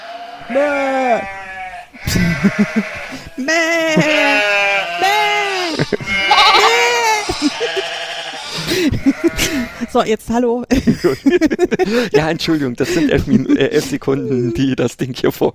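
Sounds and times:
person imitating sheep bleating: 0:00.0 - 0:10.0
speech: 0:00.5 - 0:01.4, 0:02.0 - 0:04.5, 0:09.0 - 0:15.5
laughter: 0:02.0 - 0:10.0, 0:10.7 - 0:14.7.

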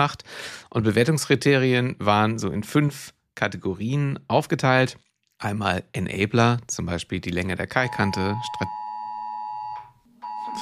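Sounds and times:
speech: 0:00.0 - 0:08.8
phone emergency warning alarm tone during a test alert: 0:07.9 - 0:10.6.

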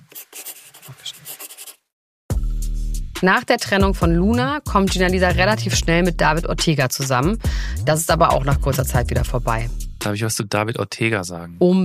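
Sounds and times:
writing by hand: 0:00.0 - 0:01.8
speech: 0:03.2 - 0:11.8.

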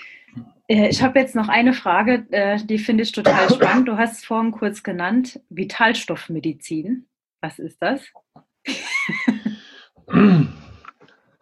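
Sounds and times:
speech: 0:00.7 - 0:09.5, 0:10.1 - 0:10.6
person coughing roughly: 0:03.2 - 0:03.9, 0:09.5 - 0:10.8.

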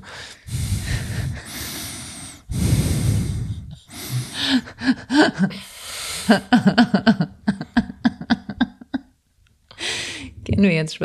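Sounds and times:
heavy rasping breathing: 0:00.0 - 0:06.8, 0:09.7 - 0:10.4
speech: 0:04.5 - 0:05.7, 0:06.3 - 0:06.9, 0:10.6 - 0:11.0
laughter: 0:06.3 - 0:09.0.

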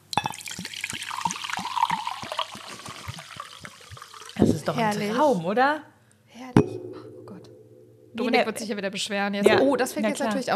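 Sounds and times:
mineral water poured into a glass: 0:00.0 - 0:04.7
fizzy bubbling hiss of mineral water: 0:00.0 - 0:05.5
speech: 0:04.4 - 0:05.9, 0:08.2 - 0:10.5.

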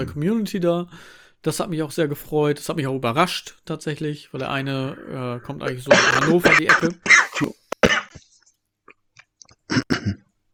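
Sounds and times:
speech: 0:00.0 - 0:07.6
throat sounds: 0:04.4 - 0:08.3
person coughing after choking on saliva: 0:05.9 - 0:08.2, 0:09.7 - 0:10.2.

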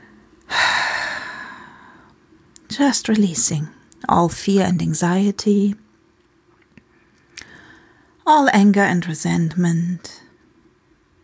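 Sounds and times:
deep exhale during a guided relaxation breathing exercise: 0:00.5 - 0:02.1
speech: 0:02.8 - 0:05.8, 0:08.3 - 0:10.2.

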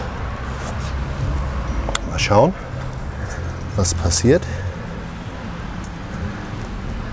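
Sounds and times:
low hum: 0:00.0 - 0:06.6
speech: 0:02.2 - 0:02.6, 0:03.8 - 0:04.6
bunch of keys jingling and clinking in a lock: 0:02.9 - 0:06.8.

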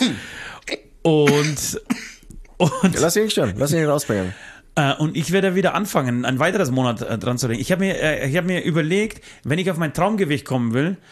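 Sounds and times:
speech: 0:01.0 - 0:11.0
person coughing and clearing throat: 0:01.2 - 0:03.1.

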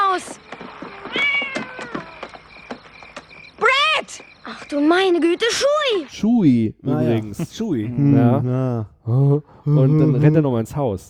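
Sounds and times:
cat meowing: 0:00.9 - 0:02.3
speech: 0:04.7 - 0:11.0.

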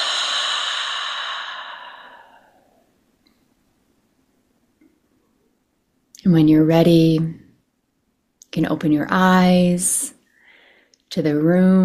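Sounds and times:
slow deep breath out through the mouth in a breathing exercise: 0:00.0 - 0:02.8
speech: 0:06.2 - 0:07.4, 0:08.5 - 0:10.2, 0:11.1 - 0:11.8.

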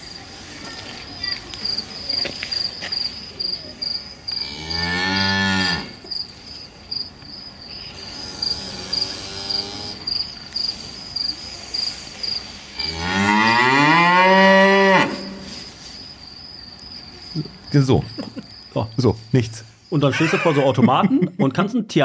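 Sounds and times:
high-pitched insect chirping: 0:00.0 - 0:21.9
cows mooing on an experience farm: 0:04.5 - 0:06.0, 0:08.0 - 0:10.1, 0:12.8 - 0:15.5
speech: 0:17.8 - 0:18.2, 0:19.0 - 0:22.0
laughter: 0:18.0 - 0:18.6, 0:20.0 - 0:21.6.

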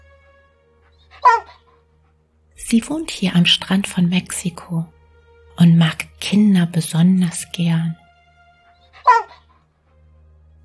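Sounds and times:
dog barking happily: 0:00.9 - 0:01.9, 0:08.7 - 0:09.7
speech: 0:02.7 - 0:05.0, 0:05.6 - 0:08.0.

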